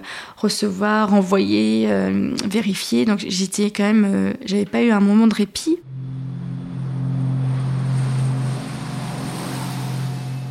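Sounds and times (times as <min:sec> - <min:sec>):
speech: 0:00.4 - 0:06.0
airplane engine drone during takeoff: 0:05.8 - 0:10.4.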